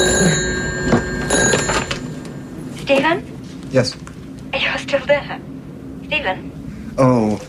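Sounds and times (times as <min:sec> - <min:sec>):
old-style telephone bell ringing: 0:00.0 - 0:03.2
speech: 0:03.7 - 0:04.1, 0:06.2 - 0:07.4.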